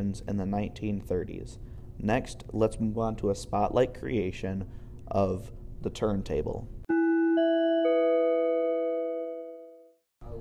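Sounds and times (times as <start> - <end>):
speech: 0.0 - 6.8
bright bell chime marking segment transition: 6.9 - 9.8.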